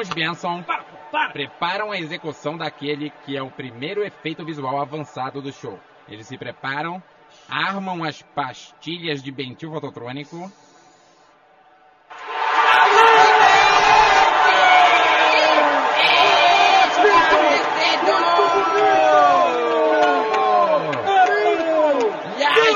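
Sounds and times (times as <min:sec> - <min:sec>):
audience shouting and cheering: 0:00.0 - 0:09.0, 0:11.4 - 0:22.7
speech: 0:00.0 - 0:10.6
whoops from the audience: 0:12.5 - 0:22.7.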